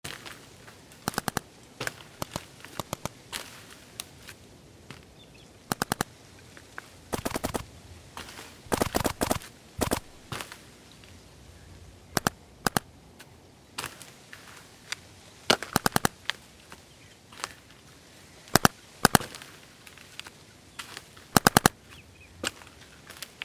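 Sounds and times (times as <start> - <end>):
paintball field ambience: 0.0 - 23.4
paintball guns firing on a paintball field: 1.0 - 3.2, 5.7 - 6.1, 7.1 - 7.6, 8.7 - 10.4, 12.2 - 12.9, 15.5 - 16.2, 18.5 - 19.4, 21.3 - 21.8.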